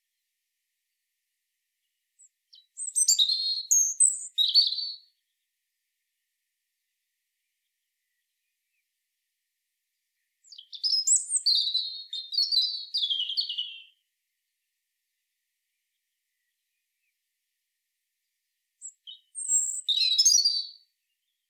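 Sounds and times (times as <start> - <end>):
European robin Erithacus rubecula singing: 2.2 - 5.2, 10.2 - 14.0, 18.8 - 21.4.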